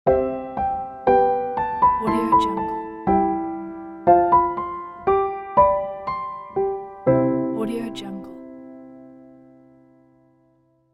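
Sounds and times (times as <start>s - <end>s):
fairytale piano transition: 0.1s - 10.6s.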